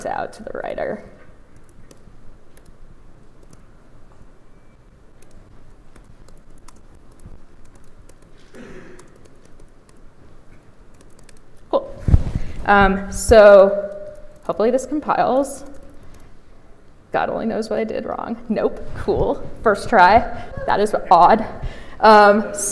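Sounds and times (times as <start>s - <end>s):
speech: 0.0s - 1.2s, 12.7s - 13.9s, 14.5s - 15.7s, 17.1s - 22.7s
typing on a computer keyboard: 3.4s - 3.6s, 5.2s - 10.1s, 10.7s - 11.7s.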